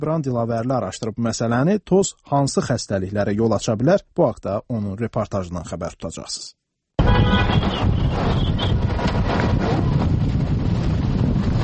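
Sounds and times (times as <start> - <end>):
speech: 0.0 - 9.6
strong wind gusting through a city street carrying dust and sand: 7.0 - 11.6.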